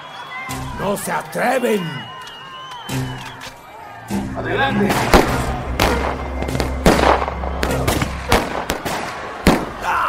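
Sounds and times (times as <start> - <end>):
speech: 0.8 - 2.1, 4.4 - 6.6
gunshots fired into the air as a warning: 4.9 - 10.0.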